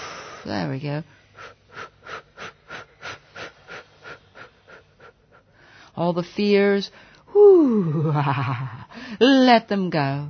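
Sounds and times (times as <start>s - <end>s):
rhythmic deep breaths during a breathing exercise: 0.0s - 6.0s
speech: 0.4s - 1.9s, 6.0s - 10.2s.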